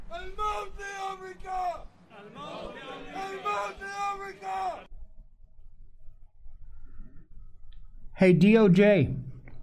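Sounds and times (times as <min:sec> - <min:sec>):
large crowd chanting in unison: 0:00.0 - 0:04.9
speech: 0:08.2 - 0:09.2.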